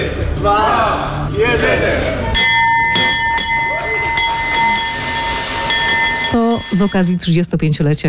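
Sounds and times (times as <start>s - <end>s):
speech: 0.4s - 2.2s, 6.3s - 8.0s
stock exchange opening bell ringing: 2.2s - 7.4s.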